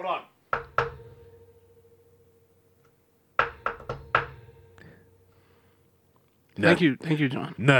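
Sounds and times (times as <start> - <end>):
knocking on an apartment door: 0.5 - 1.5, 3.4 - 4.7
speech: 6.6 - 7.7.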